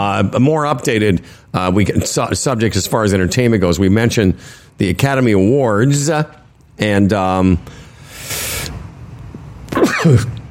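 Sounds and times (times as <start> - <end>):
speech: 0.1 - 7.8, 10.0 - 10.4
sneeze: 9.7 - 10.4.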